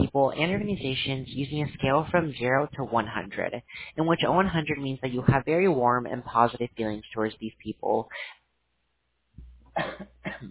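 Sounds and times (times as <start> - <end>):
speech: 0.2 - 8.4, 9.8 - 10.4
sharp harsh coughs: 9.8 - 10.4.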